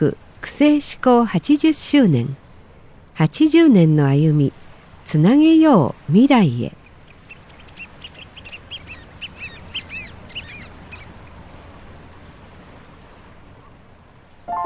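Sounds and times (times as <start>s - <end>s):
speech: 0.0s - 2.4s, 3.2s - 6.8s
running water: 0.0s - 14.5s
ducks quacking by water: 6.8s - 11.4s.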